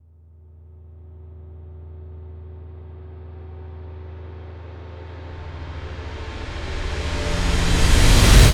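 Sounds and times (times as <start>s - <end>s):
reverse riser whoosh: 5.4s - 8.5s.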